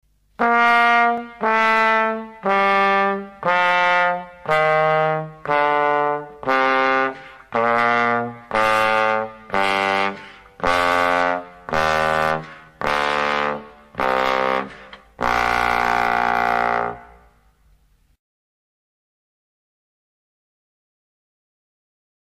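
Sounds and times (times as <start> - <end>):
brass trombone sliding from high to low: 0.4 - 17.3.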